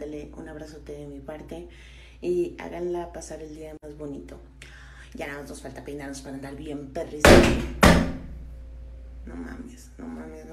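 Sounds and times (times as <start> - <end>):
speech: 0.3 - 7.8, 9.2 - 10.5
heavy door to a shared common hallway banging shut: 7.3 - 8.4.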